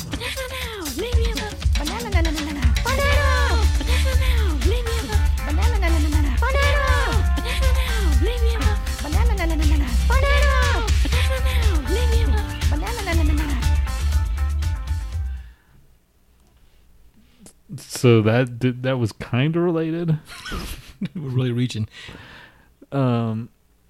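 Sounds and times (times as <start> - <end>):
loud upbeat song with sliding vocals over thumping bass: 0.0 - 15.5
speech: 18.0 - 22.3, 22.9 - 23.5.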